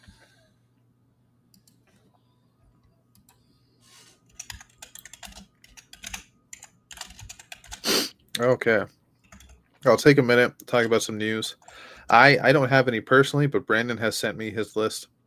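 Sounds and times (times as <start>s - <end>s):
low steady hum: 0.0s - 15.2s
loud rapid typing on a computer keyboard: 4.3s - 7.8s, 9.2s - 9.6s
speech: 8.4s - 9.0s, 9.8s - 15.2s.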